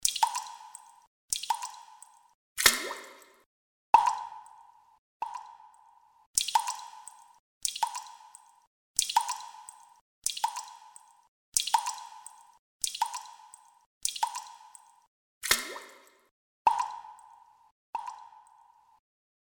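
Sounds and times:
water dripping: 0:00.0 - 0:03.4, 0:04.0 - 0:19.0.

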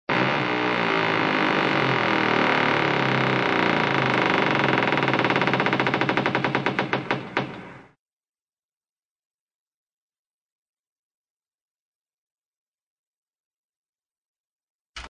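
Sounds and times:
exaggerated door creaks: 0:00.1 - 0:08.0.

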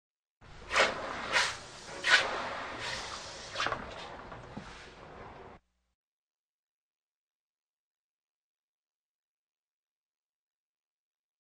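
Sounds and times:
horseshoe hissing: 0:00.6 - 0:05.3.

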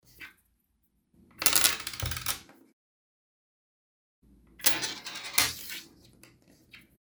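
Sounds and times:
coins spinning, stopped by hand: 0:01.4 - 0:02.4, 0:04.6 - 0:05.7.

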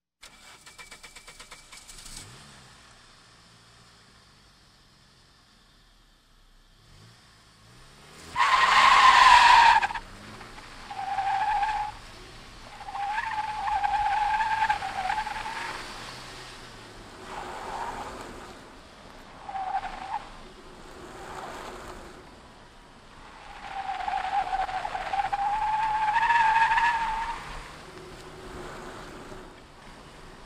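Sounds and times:
car drifting: 0:06.8 - 0:30.4.

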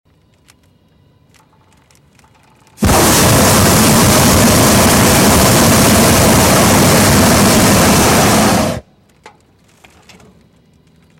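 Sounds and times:
flight sound: 0:02.8 - 0:08.9.

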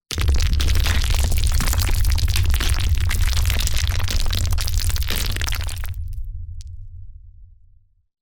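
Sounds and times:
powerful rockfall: 0:00.1 - 0:06.2.

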